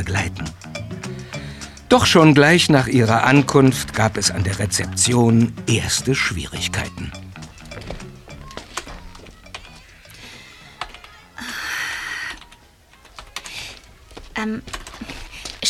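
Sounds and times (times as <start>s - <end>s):
speech: 0.0s - 0.6s, 1.9s - 7.2s
rapid typing on a computer keyboard: 10.8s - 11.2s, 12.1s - 13.8s, 14.6s - 15.6s.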